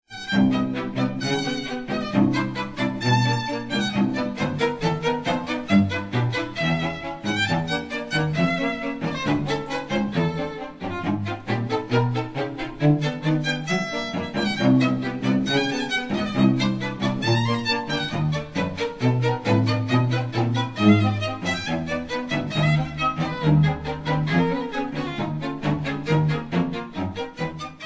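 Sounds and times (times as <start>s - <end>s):
string quartet playing: 0.1s - 27.8s.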